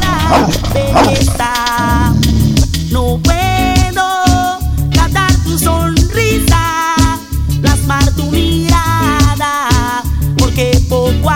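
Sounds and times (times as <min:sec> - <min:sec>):
dog barking: 0:00.0 - 0:02.2
loud continuous music beat: 0:00.0 - 0:11.3.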